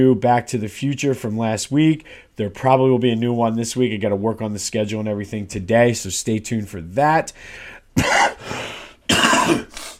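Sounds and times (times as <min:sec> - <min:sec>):
speech: 0:00.0 - 0:08.2
harsh coughs with raspy wheezing tail: 0:08.0 - 0:09.9.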